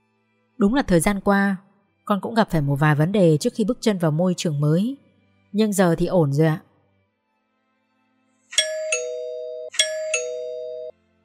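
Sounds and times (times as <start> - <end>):
speech: 0.6 - 6.7
gate bell ding-dong chimes: 8.6 - 10.9.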